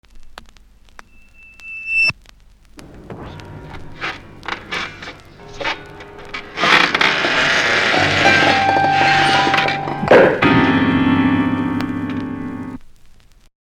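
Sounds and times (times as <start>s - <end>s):
man dragged out of piano: 2.8s - 12.8s.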